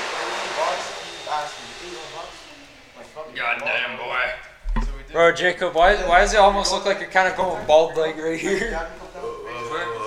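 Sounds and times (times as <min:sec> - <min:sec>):
electric hand dryer running in a high school locker room: 0:00.0 - 0:03.4
speech: 0:01.3 - 0:04.5, 0:05.1 - 0:09.0.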